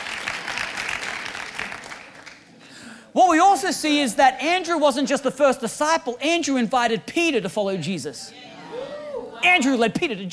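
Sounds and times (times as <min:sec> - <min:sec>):
audience applauding: 0:00.0 - 0:02.5
speech: 0:03.1 - 0:08.5, 0:09.4 - 0:10.3.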